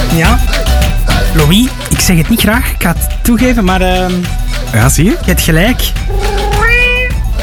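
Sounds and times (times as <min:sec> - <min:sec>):
speech: 0:00.1 - 0:00.6, 0:01.3 - 0:06.2
cat meowing: 0:06.1 - 0:07.2.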